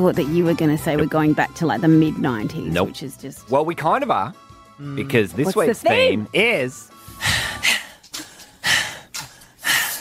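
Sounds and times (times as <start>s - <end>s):
speech: 0.0s - 7.8s
heavy rhythmic breathing: 6.9s - 9.9s.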